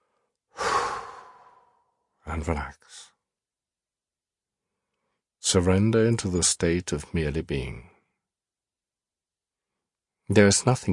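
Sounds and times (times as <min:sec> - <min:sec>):
loud breathy exhale through the mouth: 0:00.5 - 0:01.8
speech: 0:02.4 - 0:03.1, 0:05.5 - 0:07.9, 0:10.3 - 0:10.9.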